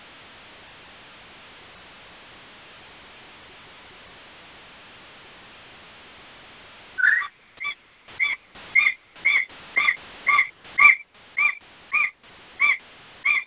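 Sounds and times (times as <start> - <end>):
baby magpie squawking: 7.0 - 13.4.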